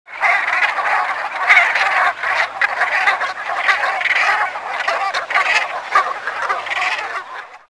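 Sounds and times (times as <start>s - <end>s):
Branta bernicla calling: 0.1s - 7.7s.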